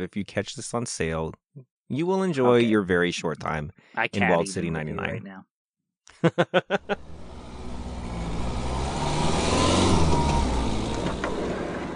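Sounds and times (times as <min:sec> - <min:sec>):
speech: 0:00.0 - 0:05.5, 0:06.2 - 0:07.4
laughter: 0:04.2 - 0:04.9, 0:06.1 - 0:07.0
car engine revving: 0:06.9 - 0:11.9.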